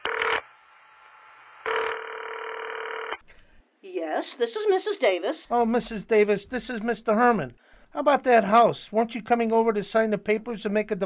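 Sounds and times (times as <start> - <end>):
electronic tones on a phone line as a number is dialed: 0.0 - 0.4, 1.6 - 3.2
speech: 3.8 - 11.0.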